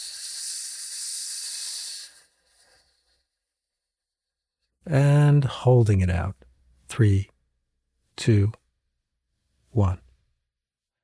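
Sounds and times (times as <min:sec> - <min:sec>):
forceful hissing exhale through pursed lips in a breathing exercise: 0:00.0 - 0:03.4
speech: 0:04.9 - 0:07.3, 0:08.2 - 0:08.6, 0:09.8 - 0:10.0.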